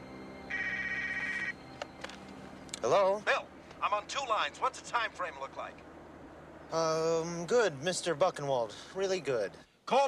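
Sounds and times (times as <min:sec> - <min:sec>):
car phone ringing while the car is driven: 0:00.0 - 0:02.4
low hum: 0:00.0 - 0:08.1
speech: 0:02.8 - 0:05.9, 0:06.7 - 0:10.0.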